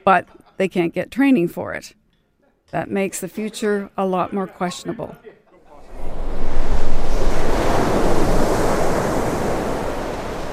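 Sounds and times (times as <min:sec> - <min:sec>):
speech: 0:00.0 - 0:02.0, 0:02.7 - 0:05.4
sea waves breaking on the shore: 0:05.7 - 0:10.5
wind buffeting the microphone: 0:05.8 - 0:10.5.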